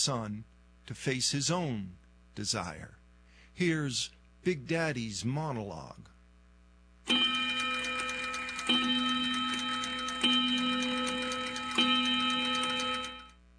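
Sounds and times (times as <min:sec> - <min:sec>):
speech: 0:00.0 - 0:03.0, 0:03.6 - 0:06.2
clock ticking: 0:07.1 - 0:13.3.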